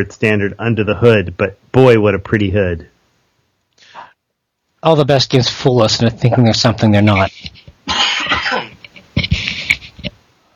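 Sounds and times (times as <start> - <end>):
speech: 0.0 - 2.9, 4.8 - 8.0
harsh wet coughing fit: 7.8 - 9.9.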